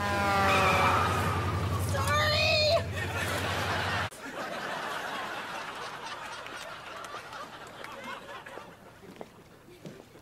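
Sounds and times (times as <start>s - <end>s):
high squealing whine from bus tires: 0.0s - 4.0s
bus pulling out with engine drone: 0.0s - 4.1s
laughter: 2.5s - 9.2s.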